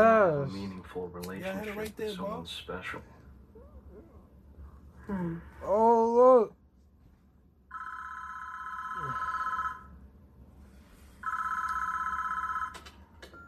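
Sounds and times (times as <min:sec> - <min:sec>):
speech: 0:00.0 - 0:03.2, 0:05.1 - 0:06.6
low hum: 0:00.0 - 0:13.4
telephone ringing with electronic trill: 0:07.7 - 0:10.0, 0:11.2 - 0:13.4.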